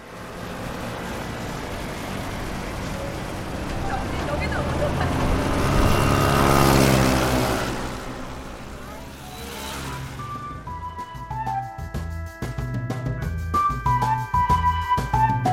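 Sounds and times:
several motorcycle engines revving as motorcyclists race off after a lifting bridge is lowered: 0:00.0 - 0:10.8
busy street traffic noise: 0:00.0 - 0:15.5.

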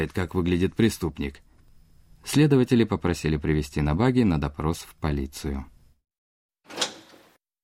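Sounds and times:
speech: 0:00.0 - 0:01.5, 0:02.2 - 0:05.7
door of a police interrogation room creaking open: 0:06.6 - 0:07.4.

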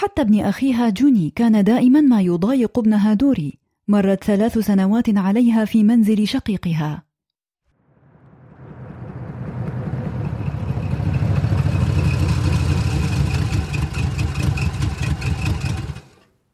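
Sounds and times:
speech: 0:00.0 - 0:07.1
heavy timber-loaded truck engine rumbling and idling: 0:08.4 - 0:16.2.

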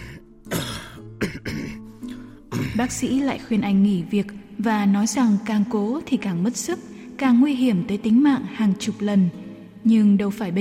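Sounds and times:
dry rasping coughing fit: 0:00.0 - 0:03.0
speech: 0:02.8 - 0:10.5.

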